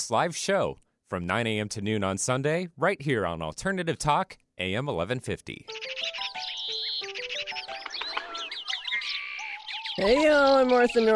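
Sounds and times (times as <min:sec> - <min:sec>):
speech: 0:00.0 - 0:05.8, 0:10.0 - 0:11.1
chorus of birds chirping and trilling: 0:05.6 - 0:11.1.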